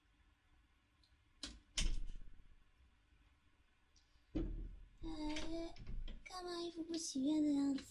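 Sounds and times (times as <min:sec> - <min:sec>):
heavy front door thud: 0:04.4 - 0:06.2
speech: 0:05.6 - 0:07.8.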